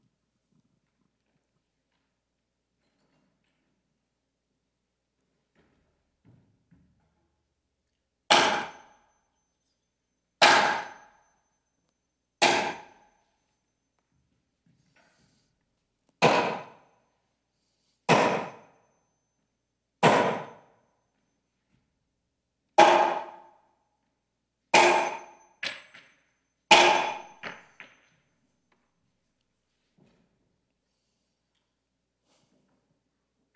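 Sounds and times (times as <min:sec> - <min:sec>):
hammer driving nails: 0:08.3 - 0:09.0, 0:10.4 - 0:11.2, 0:12.4 - 0:13.1, 0:16.1 - 0:16.9, 0:18.1 - 0:18.8, 0:20.0 - 0:20.7, 0:22.8 - 0:23.6, 0:24.7 - 0:28.2.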